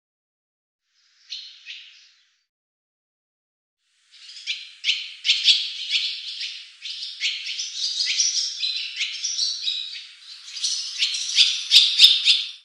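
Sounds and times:
barn swallow twittering: 4.1s - 12.6s.

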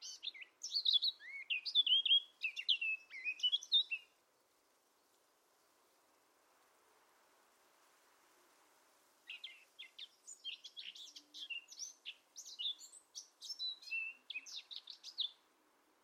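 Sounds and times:
bird singing scratchy chirps and brief whistles: 0.0s - 4.2s, 9.3s - 15.4s
soft background hiss: 0.0s - 16.0s.

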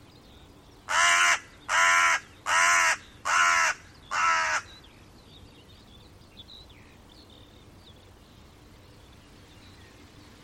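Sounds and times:
bird cawing hoarsely: 0.9s - 4.7s.

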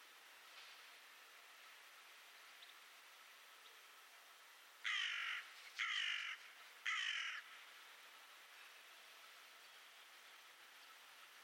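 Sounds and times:
bird giving harsh flat caw-like calls: 4.8s - 7.6s.

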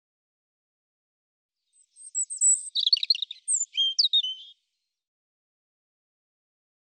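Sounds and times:
European robin song: 1.7s - 4.8s.

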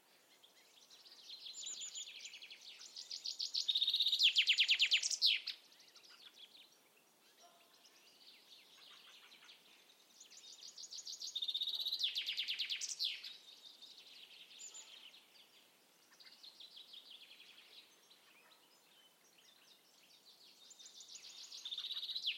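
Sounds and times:
birds chirping and trilling: 0.4s - 22.3s.

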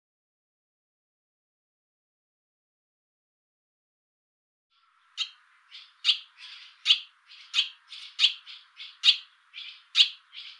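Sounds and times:
barn swallow chirping with softer buzzy notes: 5.2s - 10.5s.

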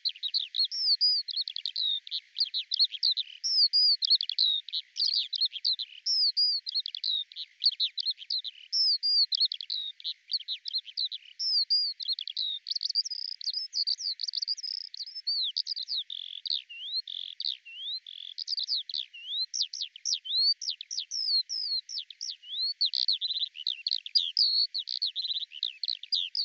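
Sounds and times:
Eurasian skylark babbling song of sharp chirps, slurred whistles and trills: 0.0s - 26.4s.

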